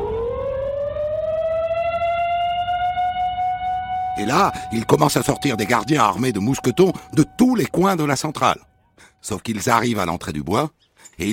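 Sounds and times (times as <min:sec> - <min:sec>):
prison alarm siren wailing: 0:00.0 - 0:08.9
speech: 0:04.2 - 0:11.3.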